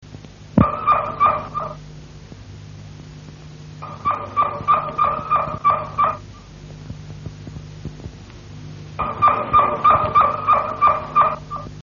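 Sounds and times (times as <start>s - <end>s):
Harz Roller canary singing rolling pulsed trills: 0.6s - 1.8s, 3.8s - 6.5s, 9.0s - 11.8s.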